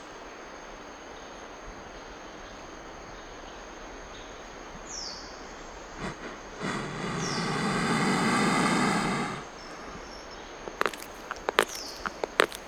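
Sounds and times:
thin high insect whine in a jungle: 5.2s - 12.6s
steady jungle hiss: 5.4s - 12.6s
sharp clicks and snaps: 10.7s - 12.6s.

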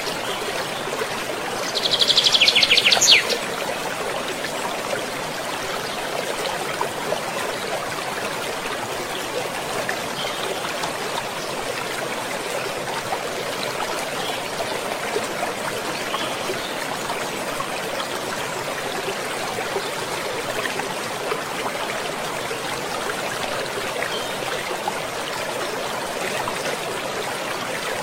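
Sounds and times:
water flowing through a cool forest: 0.0s - 28.0s
brief bright bird call: 1.8s - 3.4s.

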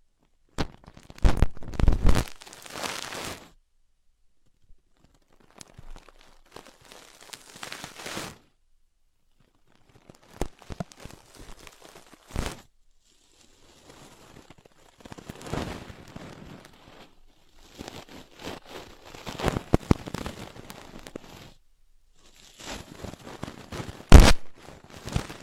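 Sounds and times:
sharp little pops and crackles: 0.2s - 3.5s, 4.4s - 8.5s, 9.3s - 25.4s
dry scratching and rustling from someone picking at an ear: 0.7s - 3.6s, 4.9s - 8.5s, 9.4s - 21.6s, 22.2s - 25.4s.

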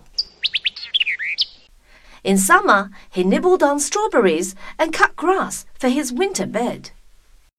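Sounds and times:
bird singing high chirps and whistled notes: 0.1s - 1.7s
speech: 2.2s - 7.0s.

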